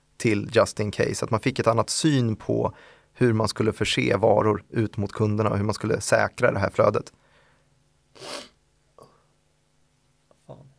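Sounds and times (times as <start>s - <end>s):
speech: 0.2s - 7.2s, 8.2s - 8.5s
person sneezing: 8.2s - 8.6s
sniffs: 8.2s - 8.6s.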